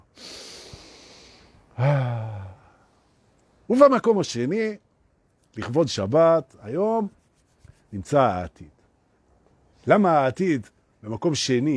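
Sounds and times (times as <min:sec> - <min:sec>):
deep breath with a voiced groaning sigh: 0:00.0 - 0:03.0
speech: 0:01.8 - 0:02.1, 0:03.7 - 0:04.8, 0:05.5 - 0:07.2, 0:07.9 - 0:08.8, 0:09.8 - 0:11.7.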